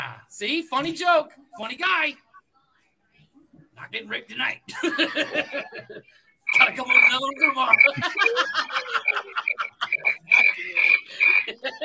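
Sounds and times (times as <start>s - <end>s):
speech: 0.3s - 2.2s, 3.8s - 11.8s
laughter: 4.7s - 11.8s
cricket-like chirping sound effect: 6.5s - 11.5s.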